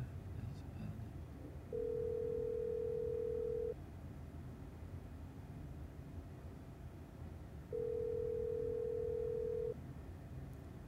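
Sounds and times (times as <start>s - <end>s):
low hiss: 0.0s - 10.8s
telephone ringback tone on an unanswered line: 1.7s - 3.8s, 7.7s - 9.8s.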